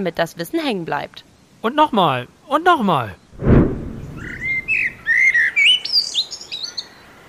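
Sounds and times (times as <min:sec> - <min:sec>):
speech: 0:00.0 - 0:03.5
low thump: 0:03.4 - 0:04.7
Eurasian blackbird singing a fluty whistled phrase: 0:04.2 - 0:07.0.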